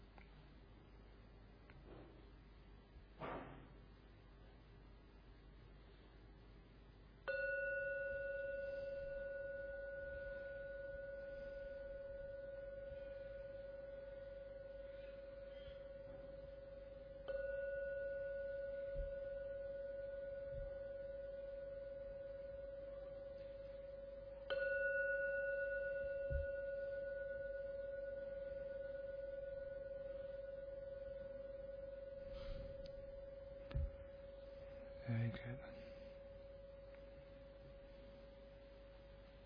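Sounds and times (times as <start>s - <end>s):
gong struck and ringing: 7.3s - 35.3s.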